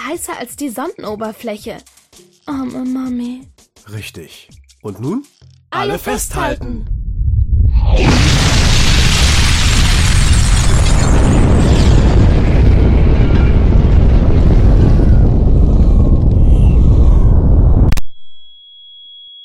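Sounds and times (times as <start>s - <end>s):
speech: 0.0s - 1.9s, 2.5s - 7.0s
warhead detonating seven kilometres above a city: 6.2s - 18.0s.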